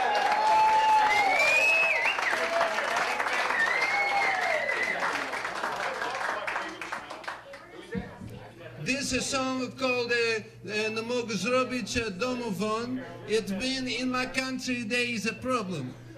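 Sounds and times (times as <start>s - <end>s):
crowd clapping: 0.0s - 7.9s
whoops and whistles: 0.5s - 2.4s, 3.5s - 5.0s
speech: 9.1s - 16.1s.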